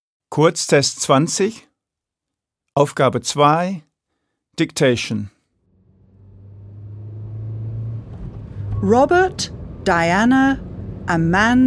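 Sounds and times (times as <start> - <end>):
speech: 0.4 - 1.7, 2.8 - 3.9, 4.6 - 5.4, 8.8 - 11.6
car engine hum driving along the road: 5.5 - 11.6.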